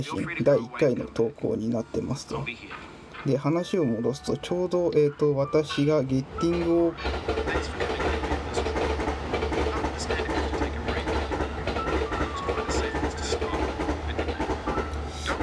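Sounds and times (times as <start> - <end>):
speech: 0.0 - 8.2
train rumbling past: 1.0 - 15.4
wheels clattering on track: 6.2 - 15.4.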